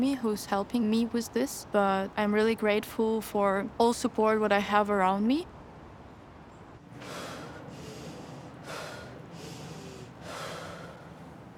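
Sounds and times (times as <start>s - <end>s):
speech: 0.0s - 5.6s
deep forceful breaths before breath hold: 6.9s - 11.5s.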